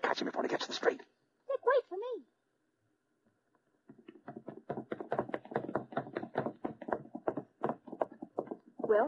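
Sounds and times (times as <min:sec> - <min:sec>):
speech: 0:00.2 - 0:01.1
man's heavy footsteps running down a staircase: 0:03.8 - 0:09.0.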